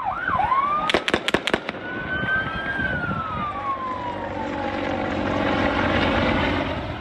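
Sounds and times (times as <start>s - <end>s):
US plane's engine roaring as it taxis to take off: 0.0s - 6.9s
burst of sharp gunshots: 0.9s - 2.0s.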